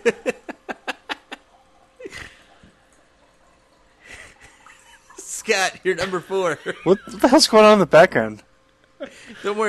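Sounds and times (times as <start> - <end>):
laughter: 0.0 - 2.4, 4.0 - 7.5
soft liquid splashing: 1.4 - 5.3
speech: 5.5 - 8.5, 9.3 - 9.6.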